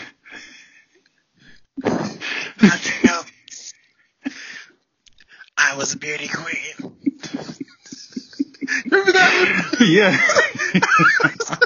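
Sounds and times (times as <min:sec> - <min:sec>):
former smoker sneezing through a throat stoma: 0:01.8 - 0:02.2
speech: 0:02.6 - 0:03.0, 0:05.8 - 0:07.1, 0:09.5 - 0:11.6
laughter: 0:02.6 - 0:03.4, 0:06.8 - 0:11.6.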